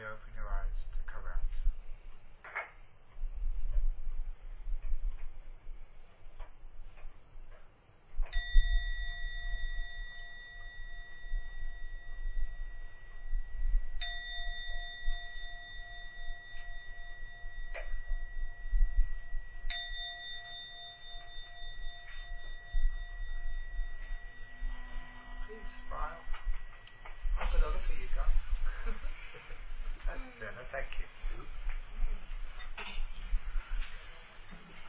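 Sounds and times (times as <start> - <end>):
quiet low rumble: 0.1 - 34.8
meditation gong struck to end a meditation: 8.3 - 29.5.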